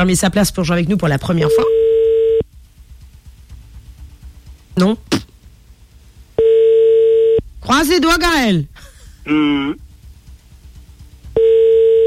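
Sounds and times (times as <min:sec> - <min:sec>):
speech: 0:00.0 - 0:01.8, 0:04.8 - 0:05.3, 0:07.6 - 0:09.8
telephone ringback tone on an outgoing call through a switchboard: 0:01.5 - 0:02.4, 0:06.4 - 0:07.4, 0:11.4 - 0:12.0.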